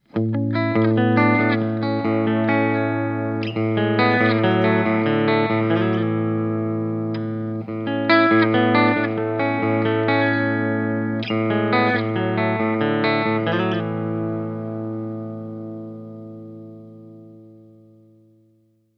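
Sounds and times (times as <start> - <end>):
clean electric guitar with humbuckers: 0.0 - 18.9.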